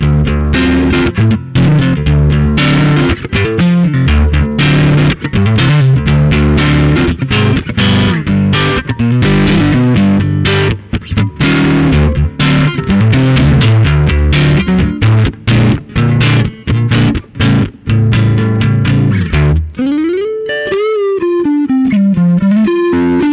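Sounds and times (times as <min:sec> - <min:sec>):
tweed electric guitar with hot center pickup: 0:00.0 - 0:23.3.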